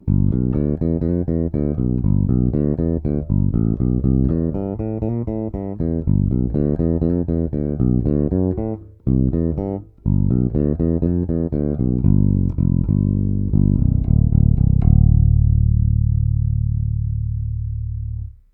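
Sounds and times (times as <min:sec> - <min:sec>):
Warwick RockBass Infinity 5 fretless bass with Thomastik JR345 strings: 0:00.0 - 0:18.5.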